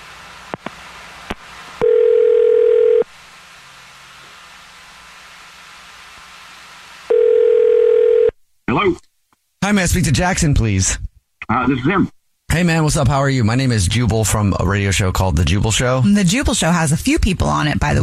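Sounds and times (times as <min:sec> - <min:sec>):
long low-pitched telephone ringback tones of an outgoing call: 0:01.8 - 0:03.1, 0:07.1 - 0:08.3
speech: 0:09.7 - 0:18.0.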